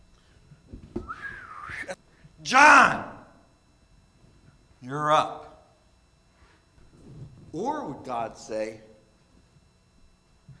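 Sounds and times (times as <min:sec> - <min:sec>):
person whistling a wavering gliding note: 0:01.0 - 0:02.0
speech: 0:01.9 - 0:03.1, 0:04.8 - 0:05.5, 0:07.6 - 0:08.9.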